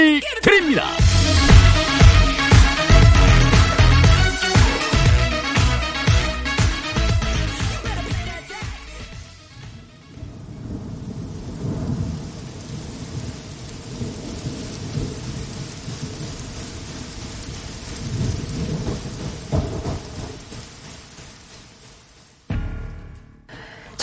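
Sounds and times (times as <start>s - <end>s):
speech: 0.0s - 1.5s
steady rain: 0.0s - 22.5s
sharp loud thunder crack and rumble: 1.0s - 7.7s, 9.5s - 21.5s
low thunder rumbling and rolling: 1.0s - 24.0s.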